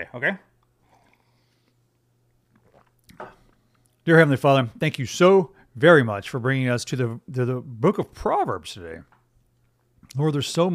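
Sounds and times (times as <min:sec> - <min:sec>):
speech: 0:00.0 - 0:00.5, 0:04.0 - 0:09.1, 0:10.1 - 0:10.7
person sipping coffee with a slurp: 0:02.4 - 0:04.0.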